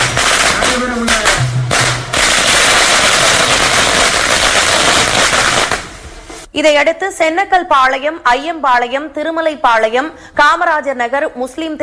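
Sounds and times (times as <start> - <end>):
drums playing as a welcome for an election campaign: 0.0 - 6.5
firecrackers and fireworks bursting in a rattle of rapid pops: 0.0 - 6.5
speech: 6.6 - 11.8.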